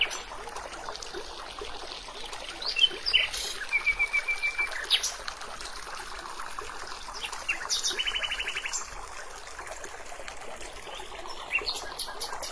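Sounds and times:
steady stream trickling in a forest: 0.0 - 12.5
birds singing in a forest: 2.6 - 5.2, 7.1 - 8.9, 10.9 - 12.5.

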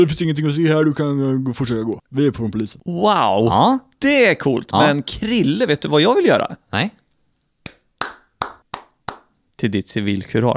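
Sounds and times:
speech: 0.0 - 7.0, 9.6 - 10.5
sharp hand claps: 7.6 - 9.4.

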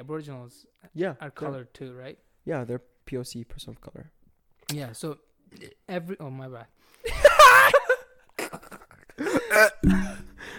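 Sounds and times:
speech: 0.0 - 7.8, 9.2 - 10.2
comedic burp sound effect: 9.6 - 10.4.

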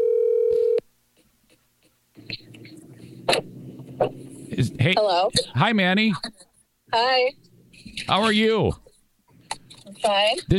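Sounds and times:
telephone dial tone: 0.0 - 0.8
speech: 4.0 - 7.4, 8.0 - 8.8, 10.0 - 10.5.

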